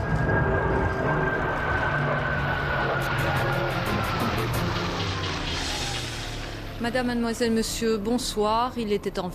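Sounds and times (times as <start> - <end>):
aircraft whine sliding downward: 0.0 - 6.8
fighter jets taking off at night from Aviano Italy: 0.0 - 6.8
speech: 6.8 - 9.3.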